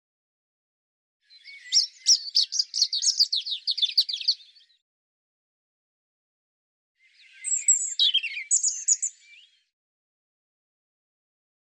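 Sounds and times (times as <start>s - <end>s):
European robin song: 1.2s - 4.8s, 7.0s - 9.7s.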